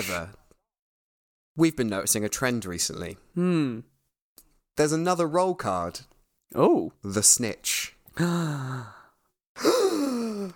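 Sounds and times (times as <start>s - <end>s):
speech: 0.0s - 0.4s, 1.6s - 3.9s, 4.8s - 9.0s
voiced gasp of surprise: 8.2s - 10.5s.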